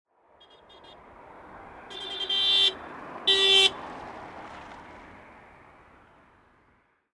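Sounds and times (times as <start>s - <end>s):
car horn honking while driving at 90 km h: 0.4s - 1.2s, 1.8s - 3.8s.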